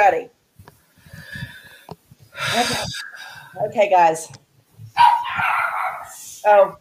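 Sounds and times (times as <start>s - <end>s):
speech: 0.1s - 0.4s, 2.4s - 4.4s, 6.4s - 6.8s
dogs barking and yelping: 4.9s - 6.2s.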